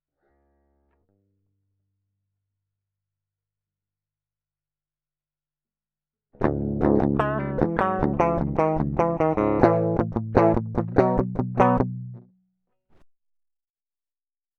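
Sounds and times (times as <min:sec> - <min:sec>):
guitar through Guitar Rig 5 amp simulator: 0:06.4 - 0:12.3.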